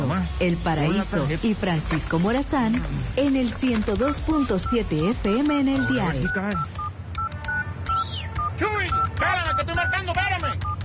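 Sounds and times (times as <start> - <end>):
speech: 0.4 - 6.8
telephone dialed with touch-tone keys: 4.4 - 10.8.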